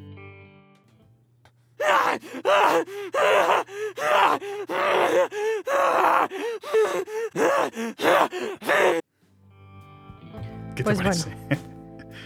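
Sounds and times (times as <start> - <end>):
video game infected runner creature screaming harsh gasping shrieks: 1.8 - 9.0
speech: 2.2 - 9.0, 10.8 - 11.7.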